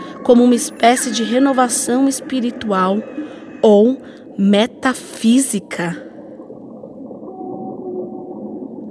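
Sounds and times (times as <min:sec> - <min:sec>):
whale singing in a long low moan: 0:00.0 - 0:04.0, 0:07.2 - 0:08.8
faint watery wash: 0:00.0 - 0:08.8
speech: 0:00.3 - 0:06.1.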